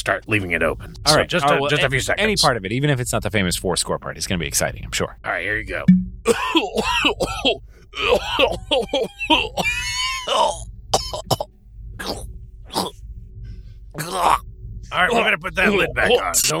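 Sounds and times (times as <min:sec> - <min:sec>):
speech: 0:00.0 - 0:11.4, 0:12.0 - 0:13.0, 0:14.0 - 0:16.5
low hum: 0:00.0 - 0:16.5
laughter: 0:06.3 - 0:10.6, 0:15.0 - 0:16.3
person coughing: 0:06.3 - 0:12.9
strained groaning vocal sounds and gasps: 0:09.1 - 0:13.2, 0:13.9 - 0:16.2.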